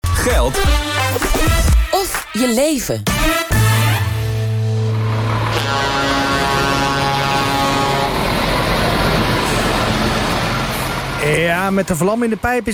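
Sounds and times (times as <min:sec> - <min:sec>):
speech: 0:00.2 - 0:03.6, 0:11.3 - 0:12.7
heavy diesel truck engine rumbling: 0:03.6 - 0:12.7.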